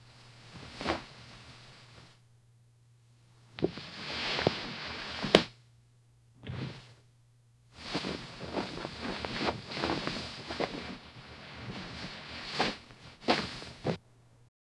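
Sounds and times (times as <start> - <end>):
soft rustling of clothing fabric: 0.0 - 2.2, 3.6 - 5.5, 7.8 - 14.4.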